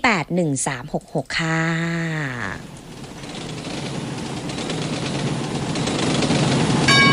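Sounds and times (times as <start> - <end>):
speech: 0.3 - 2.8
train rumbling through a railway station: 1.9 - 7.1.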